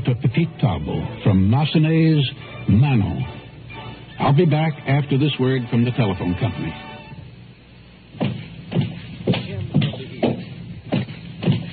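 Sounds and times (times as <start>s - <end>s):
speech: 0.1s - 3.4s, 4.2s - 6.9s
footsteps at a walking pace on a hard floor: 8.2s - 11.7s.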